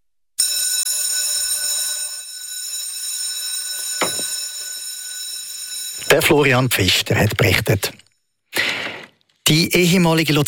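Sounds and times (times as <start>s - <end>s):
loud electric school bell ringing: 0.4s - 7.5s
speech: 6.1s - 8.0s, 9.5s - 10.4s.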